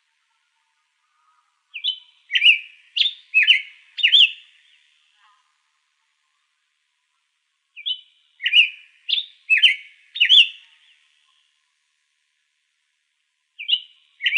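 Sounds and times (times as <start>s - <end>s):
hepatic tanager singing clear slurred whistled notes in Arizona: 1.8s - 4.4s, 7.8s - 10.6s, 13.6s - 14.3s.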